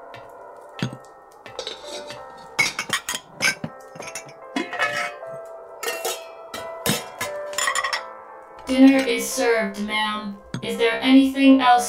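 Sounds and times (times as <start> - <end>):
glasses clinking in a Christmas toast: 0.8 - 8.1
speech: 8.7 - 11.8.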